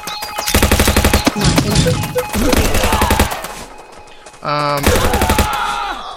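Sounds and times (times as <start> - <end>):
busy video game effects: 0.0 - 5.7
video game machine-gun fire: 0.2 - 3.8, 4.8 - 5.6.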